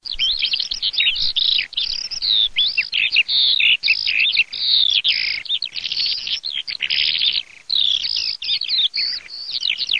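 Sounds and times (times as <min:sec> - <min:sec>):
calandra lark singing: 0:00.0 - 0:09.9.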